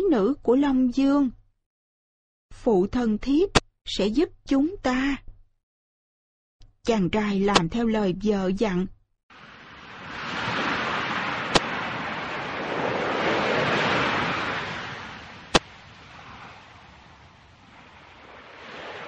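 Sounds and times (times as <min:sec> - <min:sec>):
speech: 0:00.0 - 0:01.4, 0:02.5 - 0:05.2, 0:06.8 - 0:09.0
sea waves surging: 0:09.3 - 0:19.0.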